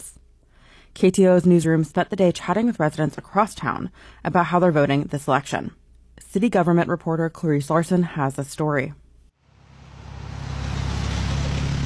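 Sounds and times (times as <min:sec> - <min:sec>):
speech: 0:01.0 - 0:09.0
car engine rumble on a wet road in the rain: 0:09.5 - 0:11.8
car tire hiss on a wet road in the rain: 0:09.5 - 0:11.8.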